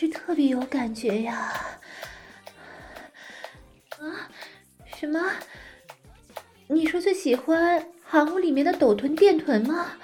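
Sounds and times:
speech: 0.0 - 2.1, 4.0 - 5.6, 6.7 - 10.0
deliberate heavy panting breaths: 1.1 - 6.0.

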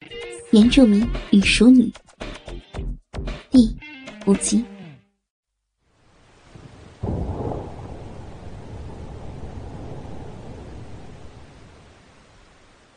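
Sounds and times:
speech: 0.5 - 2.0, 3.6 - 4.7
steady hiss of wind and rain: 5.8 - 12.9
loud thunder clap rolling into a deep rumble: 6.4 - 12.8.

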